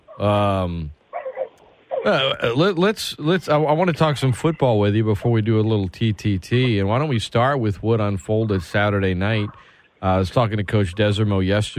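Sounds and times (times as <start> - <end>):
speech: 0.2 - 1.0, 2.0 - 11.7
dogs yipping and whining: 1.1 - 2.1
dogs barking: 1.1 - 2.2, 8.5 - 9.8.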